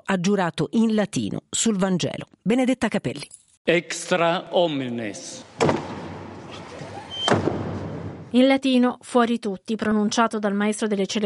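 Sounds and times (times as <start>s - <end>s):
speech: 0.1s - 5.8s, 8.3s - 11.2s
heavy chapel doors swinging shut with a deep boom: 5.5s - 8.3s.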